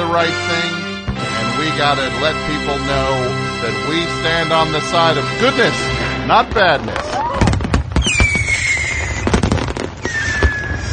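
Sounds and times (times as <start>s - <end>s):
speech: 0.1s - 0.9s, 1.6s - 7.2s
fireworks cracking and popping: 6.3s - 10.9s
long whistling streaks of fireworks: 7.0s - 10.9s.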